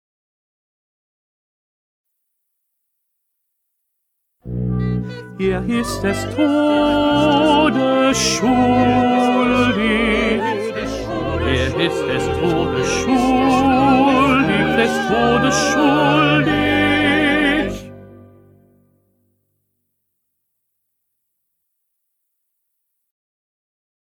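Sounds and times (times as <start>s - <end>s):
1st tenor voice singing: 4.7s - 18.0s.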